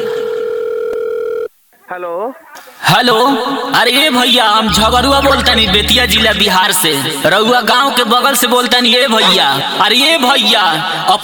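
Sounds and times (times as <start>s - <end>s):
telephone dial tone while placing a call: 0.0s - 1.5s
speech: 2.0s - 11.2s.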